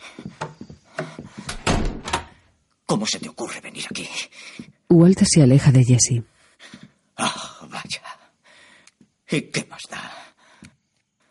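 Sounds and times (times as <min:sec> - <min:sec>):
door swinging and shutting with heavy thuds: 0:00.4 - 0:02.4
door handle clicks and rattles: 0:01.5 - 0:02.4
speech: 0:02.9 - 0:06.7, 0:09.3 - 0:09.6.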